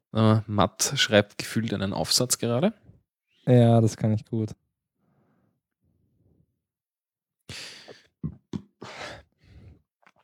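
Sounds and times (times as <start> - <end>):
speech: 0.1 - 2.8, 3.4 - 4.6, 7.5 - 8.4
throat clearing: 7.9 - 9.2.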